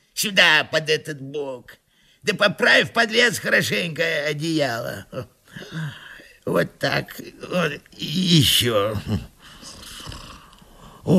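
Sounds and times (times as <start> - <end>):
speech: 0.2 - 9.3
man snoring loudly through his nose: 9.5 - 11.1.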